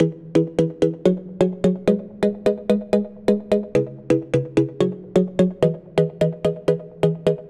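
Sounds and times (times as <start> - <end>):
soft EDM synth chord loop in E major at 128 BPM: 0.0 - 7.4.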